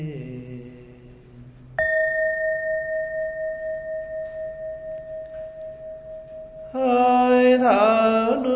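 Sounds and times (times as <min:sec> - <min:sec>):
meditation bell ringing: 0:01.8 - 0:08.5.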